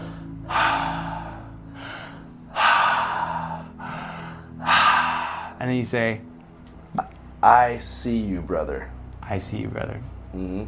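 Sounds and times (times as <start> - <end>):
deep breaths through the mouth during a Reiki-style ritual: 0.0 - 5.6
speech: 5.6 - 6.3, 7.4 - 10.6.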